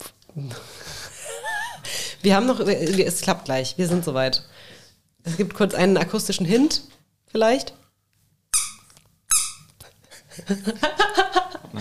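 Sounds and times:
speech: 0:00.4 - 0:00.8, 0:02.2 - 0:04.6, 0:05.2 - 0:07.8, 0:10.4 - 0:11.7
yellow rubber duck bicycle squeaker being squeezed: 0:08.5 - 0:09.7.

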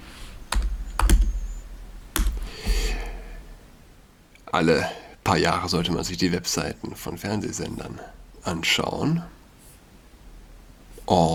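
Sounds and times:
computer keyboard typing to open a website: 0:00.5 - 0:01.6, 0:02.2 - 0:03.1
speech: 0:04.6 - 0:09.4, 0:11.1 - 0:11.3.

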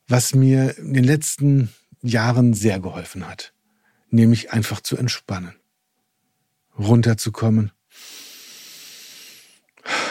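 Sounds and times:
speech: 0:00.1 - 0:05.6, 0:06.8 - 0:08.2
long slow airy inhale: 0:03.6 - 0:04.1, 0:07.9 - 0:10.0.

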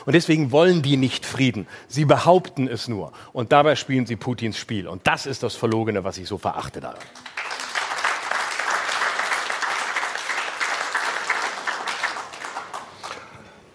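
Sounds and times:
speech: 0:00.0 - 0:07.5
crowd clapping: 0:06.9 - 0:13.4.

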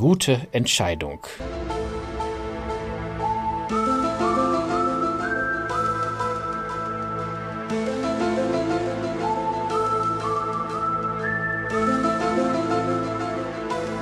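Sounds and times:
speech: 0:00.0 - 0:01.8
sustained organ-like chord backing: 0:01.4 - 0:10.8, 0:11.5 - 0:14.0
whistled melody with pitch bends: 0:03.3 - 0:14.0.

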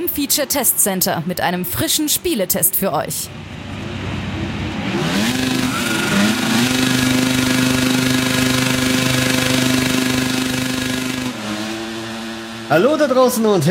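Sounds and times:
speech: 0:00.0 - 0:03.9, 0:12.7 - 0:13.6
racing motorcycle engines revving before race start: 0:03.3 - 0:13.6.

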